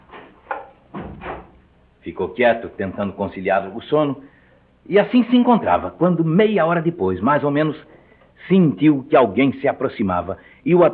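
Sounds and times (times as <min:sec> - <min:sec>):
house door banging shut with a brief rattle: 0:00.5 - 0:01.7
heavier knock: 0:00.9 - 0:01.6
speech: 0:02.0 - 0:10.9.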